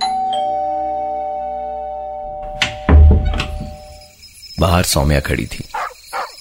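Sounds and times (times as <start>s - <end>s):
doorbell chiming: 0.0s - 4.1s
dull thumps and knocks: 2.4s - 4.0s
speech: 4.6s - 5.8s.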